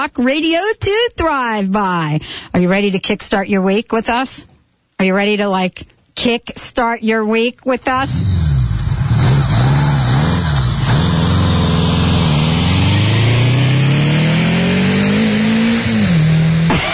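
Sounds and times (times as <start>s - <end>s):
speech: 0.0s - 8.4s
Honda Goldwing motorcycle engine revving: 8.1s - 16.8s.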